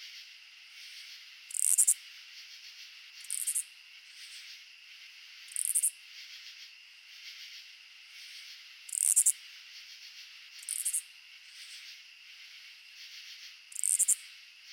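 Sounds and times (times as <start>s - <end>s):
droning insect background: 0.0s - 14.7s
oblong-winged katydid Amblycorypha oblongifolia rasping clicks: 1.5s - 2.0s, 3.2s - 3.6s, 5.5s - 5.9s, 8.9s - 9.3s, 10.6s - 11.0s, 13.7s - 14.2s.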